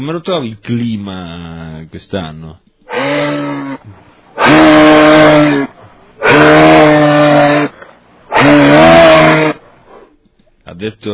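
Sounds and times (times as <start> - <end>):
speech: 0.0 - 4.0, 10.8 - 11.1
moose bellowing: 2.9 - 10.1.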